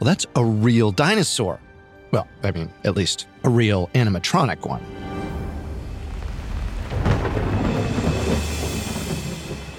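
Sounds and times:
speech: 0:00.0 - 0:05.1
deep rolling thunderclap: 0:05.6 - 0:09.7
steady rain: 0:05.6 - 0:09.7.

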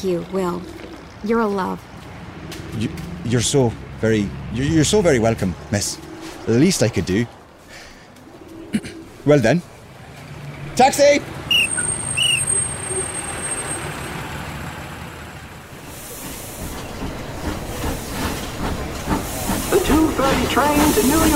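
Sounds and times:
speech: 0:00.0 - 0:01.9, 0:02.7 - 0:07.4, 0:08.7 - 0:09.7, 0:10.8 - 0:11.4, 0:20.6 - 0:21.3
steam train rumbling into a station platform: 0:00.0 - 0:21.3
steam train hissing steam at a station platform: 0:15.7 - 0:21.3
steam train wheels clattering: 0:15.7 - 0:21.3.

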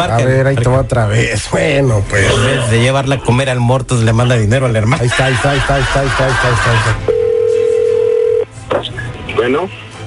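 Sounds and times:
speech: 0:00.0 - 0:07.2, 0:09.4 - 0:09.8
laughter: 0:05.0 - 0:07.0
telephone dial tone while a call is placed: 0:07.1 - 0:08.4.

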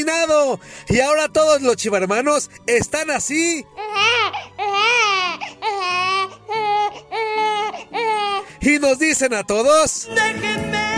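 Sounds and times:
speech: 0:00.0 - 0:04.4, 0:08.6 - 0:10.7
gasping: 0:03.7 - 0:08.6
high-pitched wailing sobs: 0:03.7 - 0:08.6.

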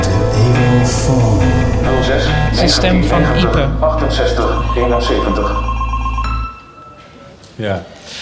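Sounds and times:
low sustained hum: 0:00.0 - 0:06.5
electronic telephone-style ringtone jingle for a radio phone-in segment: 0:02.4 - 0:07.0
speech: 0:02.6 - 0:05.7, 0:07.6 - 0:08.1.

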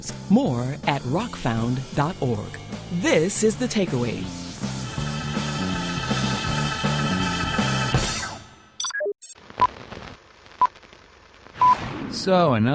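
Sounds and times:
speech: 0:00.0 - 0:04.4, 0:12.2 - 0:12.7
music: 0:00.0 - 0:08.7.

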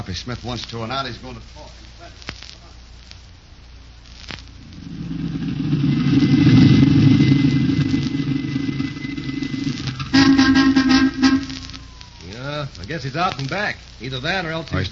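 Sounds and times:
speech: 0:00.0 - 0:02.3, 0:12.6 - 0:14.9
car engine starting and running: 0:04.6 - 0:11.4.

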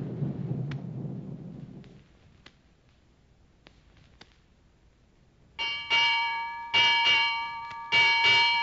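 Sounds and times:
ship's bell ringing: 0:05.6 - 0:08.6.

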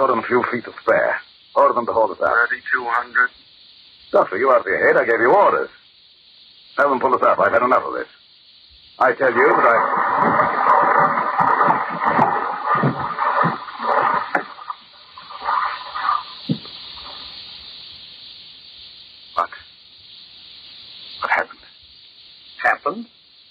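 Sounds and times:
speech: 0:00.0 - 0:03.5, 0:04.1 - 0:05.8, 0:06.8 - 0:08.2, 0:09.0 - 0:10.6
diving sphere settling onto the sea floor: 0:09.6 - 0:16.6
sharp knocks and bumps: 0:10.2 - 0:14.5, 0:16.5 - 0:16.8.

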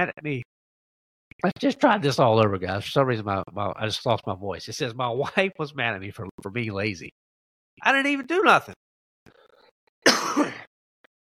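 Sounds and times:
speech: 0:00.0 - 0:00.5, 0:01.4 - 0:07.2, 0:07.8 - 0:08.8, 0:10.4 - 0:10.6
throat clearing cough: 0:10.1 - 0:10.7.

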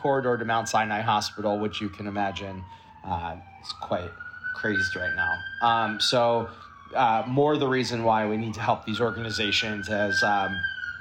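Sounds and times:
speech: 0:00.0 - 0:10.8
emergency vehicle siren wailing: 0:00.0 - 0:10.9.

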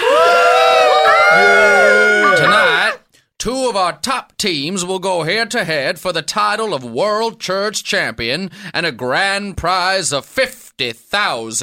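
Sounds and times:
large arena crowd cheering wildly: 0:00.0 - 0:03.0
many voices shouting and whooping together: 0:00.0 - 0:03.0
speech: 0:03.4 - 0:11.6.

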